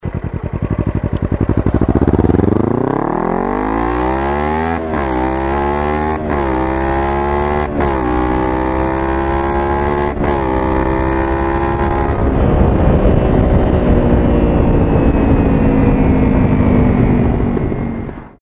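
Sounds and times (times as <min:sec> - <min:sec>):
Ninja 250 motorcycle accelerating: 0:00.0 - 0:18.3.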